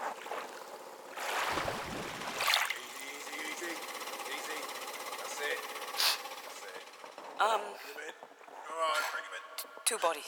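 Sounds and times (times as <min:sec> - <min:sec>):
water splashing and churning: 0:00.1 - 0:03.5
winch hauling a load up out of the water: 0:02.7 - 0:07.5
speech: 0:09.9 - 0:10.2.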